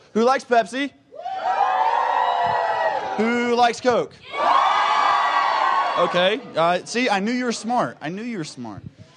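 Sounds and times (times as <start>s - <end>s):
speech: 0.2s - 1.5s, 3.2s - 4.5s, 6.0s - 9.0s
church crowd yelling and cheering: 1.1s - 7.0s.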